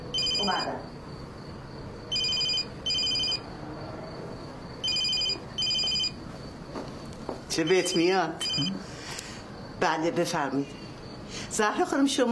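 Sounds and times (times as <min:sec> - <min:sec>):
low room noise: 0:00.0 - 0:11.1
mobile phone ringing with an electronic ringtone: 0:00.1 - 0:00.8, 0:02.1 - 0:03.5, 0:04.8 - 0:06.2, 0:07.7 - 0:08.8
speech: 0:00.4 - 0:01.0, 0:07.6 - 0:08.9, 0:09.8 - 0:12.3.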